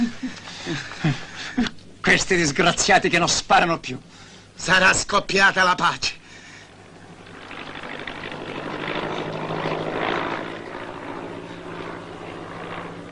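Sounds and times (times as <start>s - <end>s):
speech: 0.7s - 1.2s, 2.1s - 6.2s
German propeller aircraft droning overhead: 6.2s - 13.1s.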